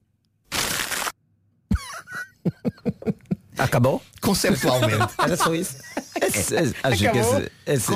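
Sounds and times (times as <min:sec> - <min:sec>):
paper crumpling in a computer trash-emptying sound effect: 0:00.5 - 0:01.2
people laughing in rhythmic bursts: 0:01.7 - 0:03.8, 0:04.5 - 0:07.9
speech: 0:02.4 - 0:03.0, 0:03.6 - 0:07.9.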